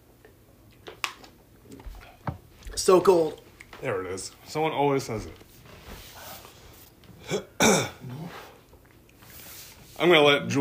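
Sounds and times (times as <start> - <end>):
speech: 2.8 - 5.4, 10.0 - 10.5
loud burp after shotgunning a beer: 7.2 - 8.3.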